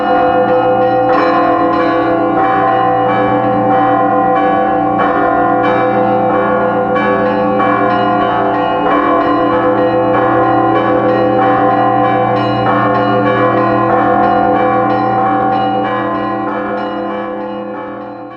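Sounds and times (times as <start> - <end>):
Russian Orthodox church bells ringing rapidly in fast Moscow style: 0.0 - 18.3.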